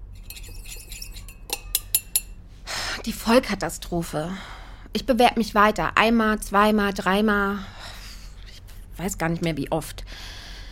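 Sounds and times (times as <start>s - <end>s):
low hum: 0.0s - 10.7s
glasses clinking in a home kitchen: 0.2s - 2.4s
speech: 3.0s - 7.8s, 9.0s - 10.4s.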